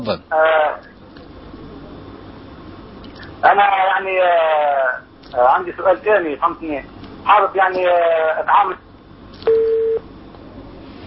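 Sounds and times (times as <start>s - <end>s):
speech: 0.0s - 0.9s, 3.4s - 9.6s
steady mid-pitched telephone line beep after a call is cut off: 9.4s - 10.0s.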